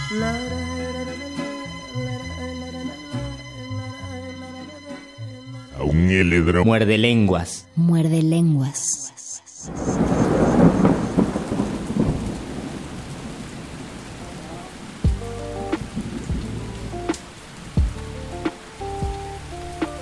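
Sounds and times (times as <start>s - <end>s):
speech: 0.2s - 0.6s, 5.9s - 10.8s
low thunder rumbling: 9.7s - 18.0s
steady rain hissing and pattering: 9.7s - 20.0s.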